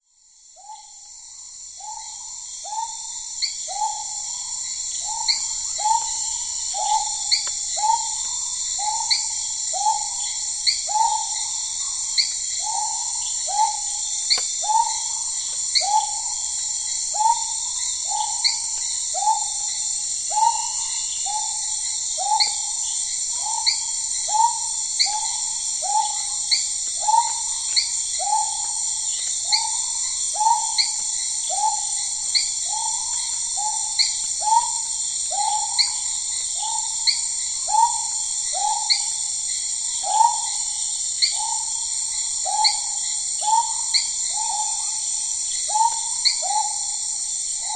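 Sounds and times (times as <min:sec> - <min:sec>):
Amazonian crickets chirping: 0:00.1 - 0:47.7
Amazonian frogs calling: 0:00.6 - 0:47.7.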